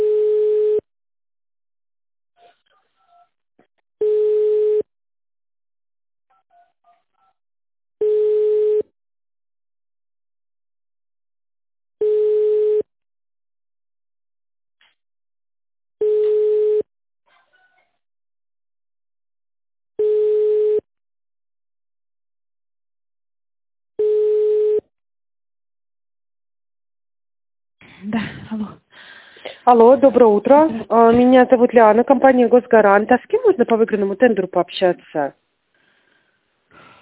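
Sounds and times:
telephone ringback tone while a call is being connected: 0.0s - 0.8s, 4.0s - 4.8s, 8.0s - 8.8s, 12.0s - 12.9s, 16.0s - 16.8s, 20.0s - 20.8s, 24.0s - 24.8s
speech: 28.0s - 28.8s, 29.6s - 35.4s.

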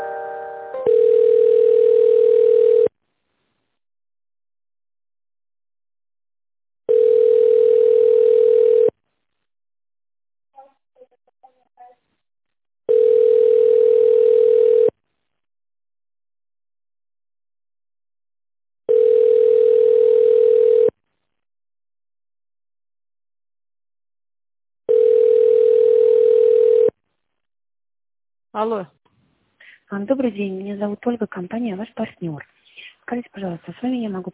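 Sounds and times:
telephone line tones while a call is transferred: 0.4s - 2.9s, 6.9s - 8.9s, 12.9s - 15.0s, 18.9s - 21.0s, 24.9s - 27.0s
speech: 30.1s - 34.3s.

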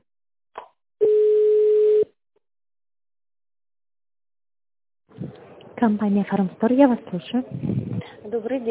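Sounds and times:
steady telephone line tone: 1.0s - 2.1s
speech: 5.8s - 8.6s.

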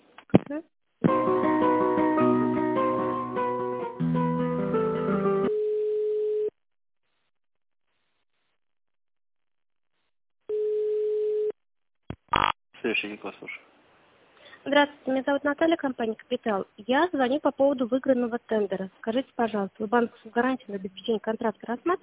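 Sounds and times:
speech: 0.5s - 0.8s, 13.0s - 13.8s, 14.6s - 22.0s
hold music on an office phone line during a call transfer: 1.0s - 5.5s
steady single-pitch telephone line tone: 5.5s - 6.6s, 10.5s - 11.6s.

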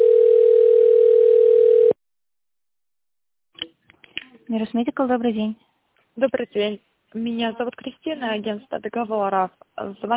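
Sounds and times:
telephone ringing tone while a call is being connected: 0.0s - 2.0s
speech: 4.5s - 10.1s.

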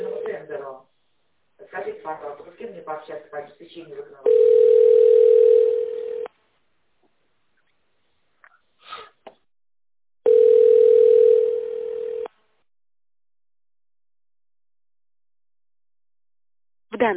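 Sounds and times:
speech: 2.1s - 5.6s
long steady mid-pitched telephone line tones after a dropped call: 4.2s - 6.3s, 10.2s - 12.3s.

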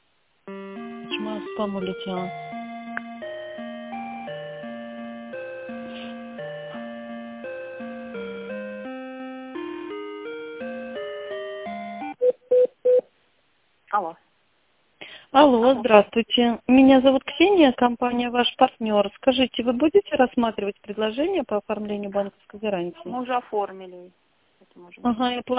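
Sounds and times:
electronic tonal melody on a telephone line: 0.5s - 12.2s
speech: 1.2s - 2.4s, 15.5s - 24.2s, 24.8s - 25.5s.

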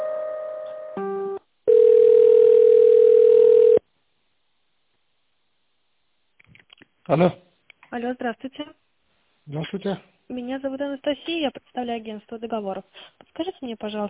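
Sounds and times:
telephone line tones during a call transfer: 1.7s - 3.8s
speech: 7.1s - 8.8s, 9.5s - 14.0s.

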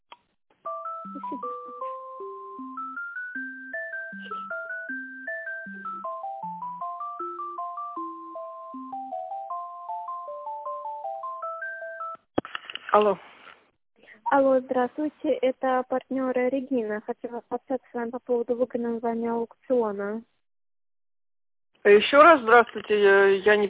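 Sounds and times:
synthetic electronic phone tune while a call is transferred: 0.7s - 12.2s
speech: 1.1s - 1.6s, 13.0s - 13.3s, 14.3s - 20.3s, 21.8s - 23.6s.

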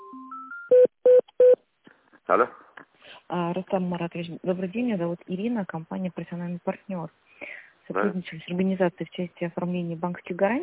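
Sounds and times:
telephone ringing beeps as a call is transferred: 0.2s - 1.6s
speech: 2.3s - 2.6s, 3.3s - 10.6s.

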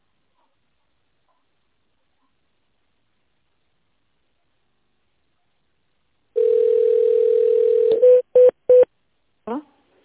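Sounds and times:
telephone ringing tone while waiting to connect to an operator: 6.4s - 8.8s.

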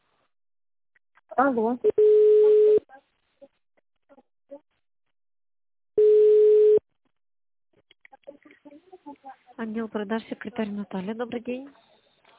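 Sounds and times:
speech: 1.4s - 2.0s, 9.3s - 11.9s
telephone ringback tone on a call to a company line: 2.0s - 2.8s, 6.0s - 6.8s.

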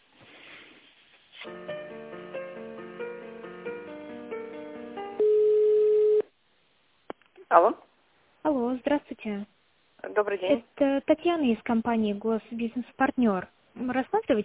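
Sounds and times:
telephone line tones while a call is being connected: 5.2s - 6.3s
speech: 7.5s - 7.8s, 8.5s - 9.5s, 10.2s - 14.4s.

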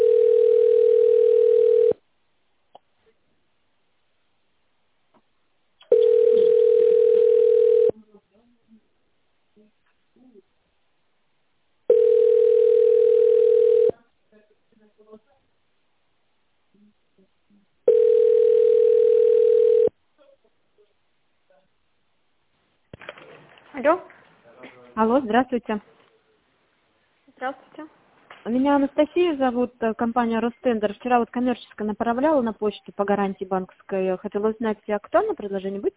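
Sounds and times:
telephone ringback tone during call transfer: 0.0s - 2.0s, 5.9s - 7.9s, 11.9s - 13.9s, 17.9s - 19.9s
speech: 23.9s - 24.1s, 25.0s - 26.0s, 28.5s - 35.9s.

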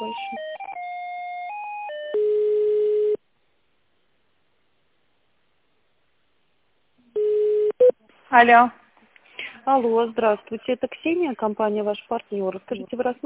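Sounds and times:
telephone line tones during a call transfer to the contracts department: 0.0s - 3.2s, 7.2s - 7.9s
speech: 8.4s - 8.8s, 9.6s - 13.2s.

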